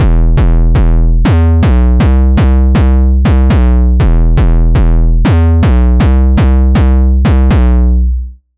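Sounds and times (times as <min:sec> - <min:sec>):
808 drum machine half-step beat: 0:00.0 - 0:07.9.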